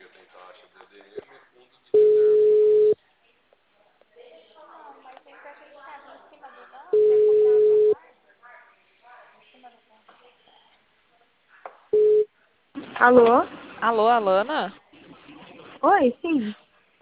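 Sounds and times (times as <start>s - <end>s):
telephone busy signal: 2.0s - 3.0s, 7.0s - 8.0s, 12.0s - 12.3s
speech: 13.0s - 14.8s, 15.8s - 16.6s.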